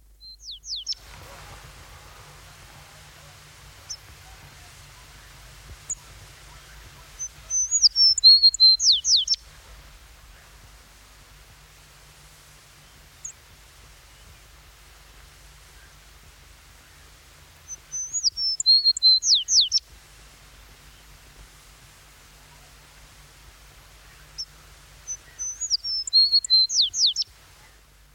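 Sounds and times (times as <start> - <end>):
tree sparrow chirping: 0.2 - 1.0, 5.9 - 9.4, 17.6 - 19.8, 24.1 - 27.3
songbirds singing: 0.2 - 19.9, 20.4 - 28.0.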